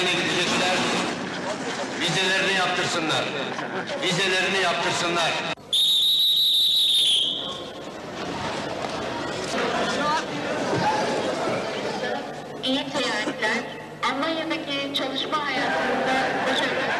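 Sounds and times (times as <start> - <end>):
dense crowd murmuring and chattering on a train station platform: 0.0 - 5.8, 7.0 - 16.9
speech: 2.1 - 5.6
long piercing whistle at a train station platform: 5.6 - 7.8.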